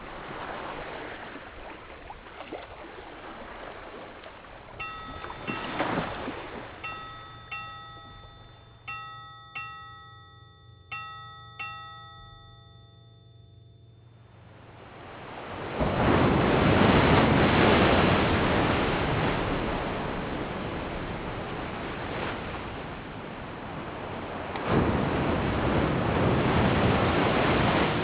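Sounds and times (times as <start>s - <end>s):
ocean waves on Casco Bay in Maine: 0.0s - 28.0s
ringing bell-like tones: 4.8s - 14.6s.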